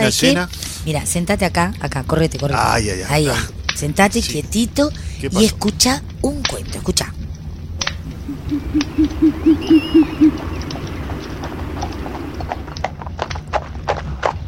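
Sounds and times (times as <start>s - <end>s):
speech: 0.0s - 7.2s, 8.5s - 10.6s
low noise: 0.0s - 13.9s
horse at a long trot approaching a ranch: 8.0s - 14.4s.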